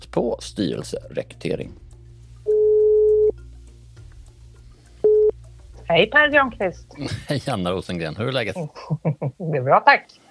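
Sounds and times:
speech: 0.2s - 1.8s, 5.9s - 10.3s
telephone ringing tone while a call is placed: 2.5s - 3.3s, 5.0s - 5.3s
laughter: 7.0s - 7.8s, 8.4s - 9.5s.

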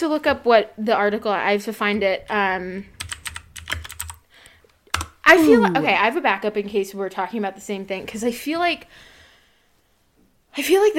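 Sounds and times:
speech: 0.0s - 3.0s, 5.3s - 9.1s, 10.6s - 10.9s
typing on a mechanical keyboard: 3.0s - 4.2s, 4.9s - 5.2s.

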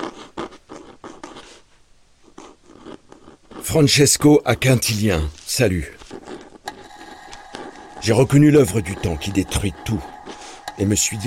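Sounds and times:
quill pen scratching on paper: 0.0s - 4.4s, 5.4s - 6.8s
speech: 3.6s - 6.0s, 8.0s - 10.1s, 10.8s - 11.2s.

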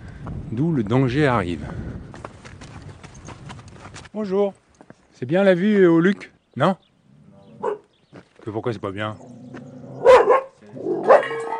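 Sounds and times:
speech: 0.5s - 1.9s, 4.2s - 4.6s, 5.2s - 6.9s, 8.4s - 9.4s
dog barking: 7.6s - 7.9s, 10.0s - 11.5s.

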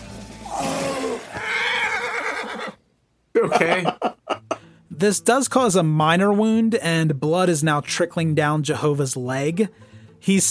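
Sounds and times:
horse whinnying in pain: 0.5s - 2.8s
speech: 3.4s - 4.1s, 5.0s - 10.4s
laughter: 3.4s - 4.6s.

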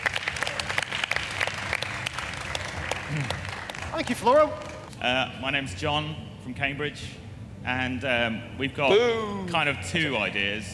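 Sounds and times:
live audience applause: 0.0s - 4.9s
speech: 3.1s - 3.4s, 4.0s - 10.7s.

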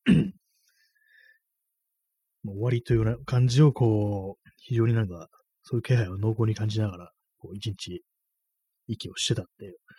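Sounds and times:
single short rough throaty cough: 0.0s - 0.4s
speech: 2.4s - 8.1s, 8.9s - 9.9s.

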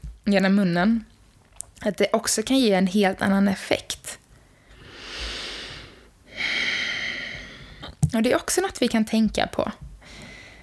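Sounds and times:
speech: 0.3s - 1.1s, 1.8s - 4.2s, 8.2s - 9.9s
long deep breath drawn in through the nose: 4.4s - 7.9s.

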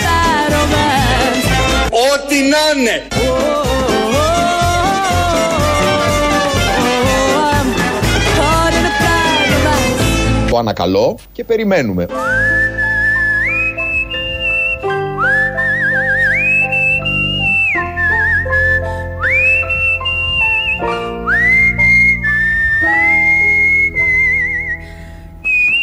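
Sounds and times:
steady music: 0.0s - 11.1s, 11.8s - 25.8s
speech: 2.2s - 3.6s, 10.6s - 12.5s
clear melodic whistled tune: 12.0s - 25.8s.

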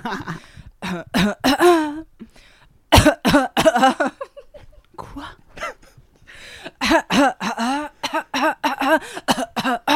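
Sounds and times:
speech: 0.0s - 1.8s
short coughs and throat-clearing bursts: 0.0s - 2.0s, 2.9s - 4.7s, 5.5s - 6.0s, 6.8s - 9.9s.

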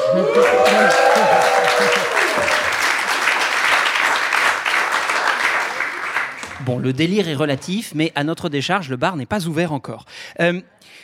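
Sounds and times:
live audience cheering and whooping: 0.0s - 3.4s
live audience applauding: 0.0s - 6.9s
speech: 0.1s - 2.6s, 6.7s - 11.0s.

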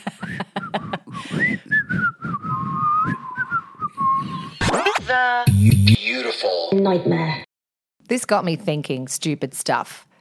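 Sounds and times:
person imitating a stovetop kettle whistle: 1.3s - 4.6s
speech: 5.1s - 7.4s, 8.1s - 10.1s.

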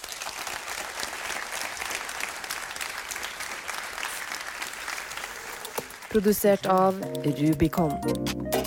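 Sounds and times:
applause from a sizable audience: 0.0s - 7.0s
speech: 6.2s - 8.5s.

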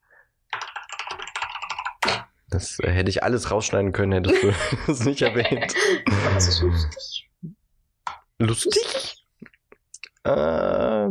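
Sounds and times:
loud computer keyboard typing: 0.5s - 2.2s
speech: 2.5s - 7.5s, 8.4s - 9.2s, 10.2s - 11.0s
laughter: 4.3s - 7.0s.

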